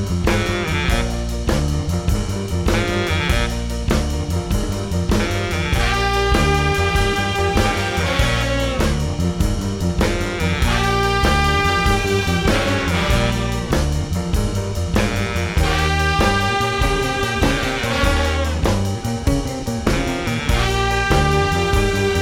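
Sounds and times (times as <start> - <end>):
sliding horns: 0.1 - 22.2.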